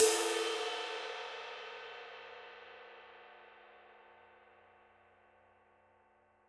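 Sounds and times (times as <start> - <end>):
dark crash ride cymbal: 0.0 - 2.4.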